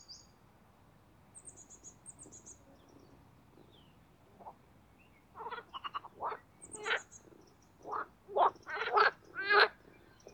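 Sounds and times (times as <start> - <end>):
marsh frogs croaking in mating chorus at a boating pond: 5.4 - 10.3.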